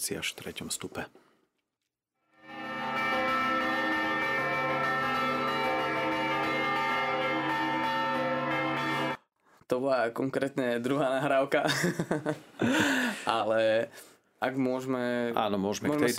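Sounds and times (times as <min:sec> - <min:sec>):
speech: 0:00.0 - 0:01.3, 0:09.7 - 0:16.1
hand-struck church bell ringing: 0:02.3 - 0:09.2
laughter: 0:11.6 - 0:13.2.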